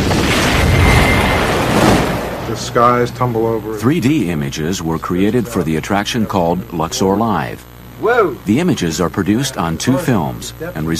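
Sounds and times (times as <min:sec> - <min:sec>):
explosion effect with deep rumbling roar: 0:00.0 - 0:03.6
speech: 0:02.6 - 0:10.9.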